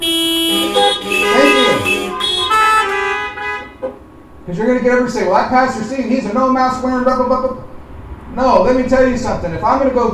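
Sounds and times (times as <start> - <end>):
car horn honking: 0.0 - 4.1
speech: 4.5 - 7.7, 8.4 - 10.1.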